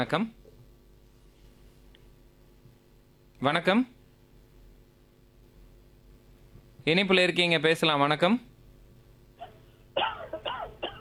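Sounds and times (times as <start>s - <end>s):
speech: 0.0s - 0.4s, 3.4s - 4.0s, 6.8s - 8.5s
caller coughing over a phone line: 9.4s - 10.9s.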